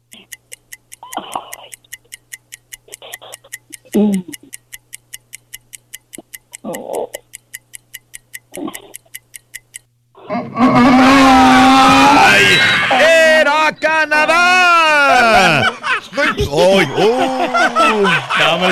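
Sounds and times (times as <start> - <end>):
fast clock ticking countdown for a quiz question: 0.0 - 9.9, 14.1 - 18.7
speech: 4.0 - 4.4, 18.0 - 18.7
laughter: 10.2 - 13.2, 14.9 - 18.7.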